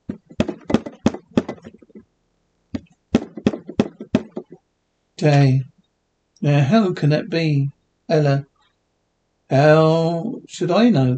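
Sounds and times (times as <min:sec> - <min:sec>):
firm knocking on a wooden door: 0:00.0 - 0:02.0, 0:03.2 - 0:04.6
speech: 0:05.2 - 0:05.7, 0:06.4 - 0:08.5, 0:09.5 - 0:11.1.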